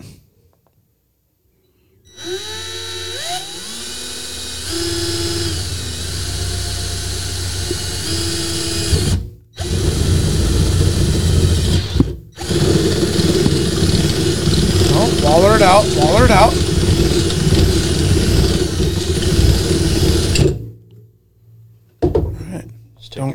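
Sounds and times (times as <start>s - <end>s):
power drill drilling a hole: 2.1s - 20.6s.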